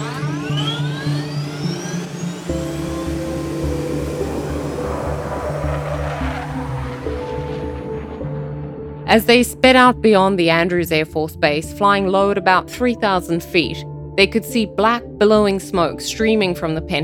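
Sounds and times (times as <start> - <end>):
jet aircraft engines spooling up with turbine whine: 0.0 - 8.8
speech: 9.1 - 17.0.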